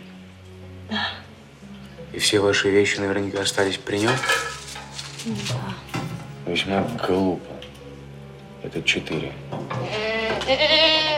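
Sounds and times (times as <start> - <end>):
speech: 2.2 - 4.5, 5.2 - 5.9, 6.5 - 7.7, 8.6 - 11.0
single sheep bleating in a sheep pen in a tavern: 9.7 - 11.1.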